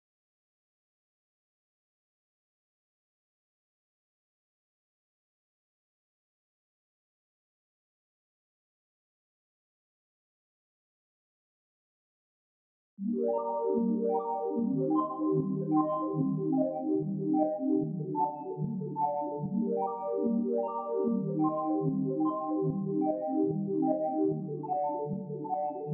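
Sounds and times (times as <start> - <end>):
trippy wavy synth arpeggio at 148 BPM in G minor: 13.0 - 25.9.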